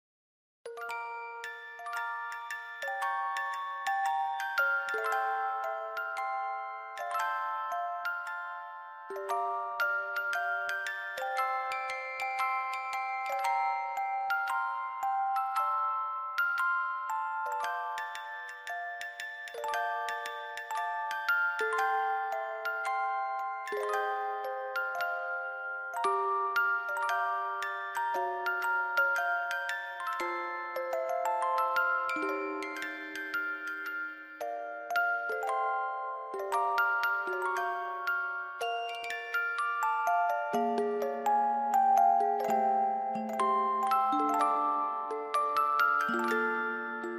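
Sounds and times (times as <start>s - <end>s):
music box melody: 0.7s - 47.1s.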